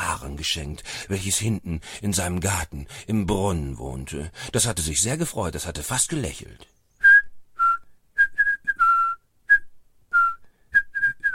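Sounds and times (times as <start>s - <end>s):
speech: 0.4s - 6.8s
person whistling a cheerful little tune: 7.0s - 11.3s.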